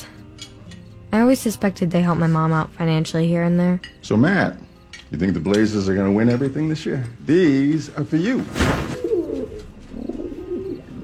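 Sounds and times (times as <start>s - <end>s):
speech: 1.1s - 8.8s
racing pigeons cooing: 8.8s - 11.0s.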